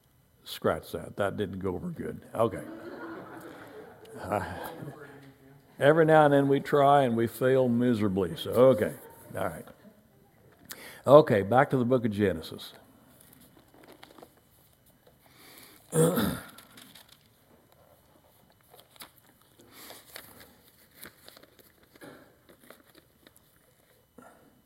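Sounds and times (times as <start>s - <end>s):
speech: 0.5s - 3.0s, 4.2s - 5.1s, 5.8s - 9.8s, 11.0s - 12.8s, 15.9s - 16.4s
laughter: 2.4s - 5.3s, 8.5s - 10.0s
loose paper crinkling and shuffling: 13.1s - 24.1s.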